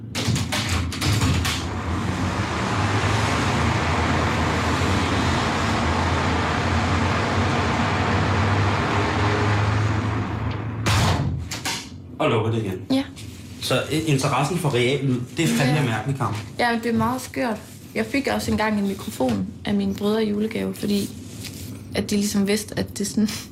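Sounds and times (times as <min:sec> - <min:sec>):
street traffic roar through an open window: 0:01.0 - 0:11.8
cars passing: 0:01.6 - 0:10.9
speech: 0:12.2 - 0:13.1, 0:13.7 - 0:21.2, 0:22.0 - 0:23.5.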